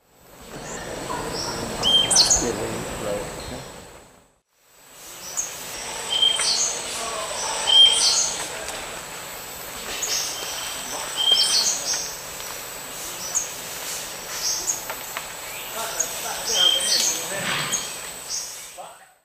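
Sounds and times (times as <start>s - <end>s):
Euphonia minuta calling in South American eastern lowlands: 0.4s - 3.9s, 5.1s - 8.9s, 9.9s - 12.3s, 14.3s - 19.2s.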